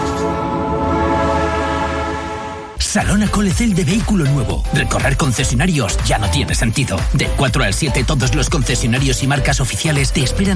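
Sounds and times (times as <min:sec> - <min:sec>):
historic train tonal drone: 0:00.0 - 0:02.8
speech: 0:02.9 - 0:10.5.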